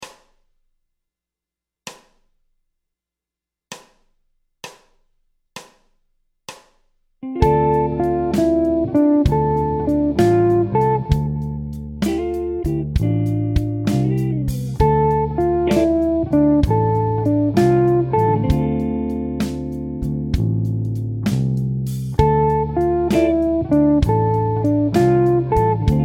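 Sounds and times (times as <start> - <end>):
jazz guitar minor chord phrase: 7.2 - 26.0.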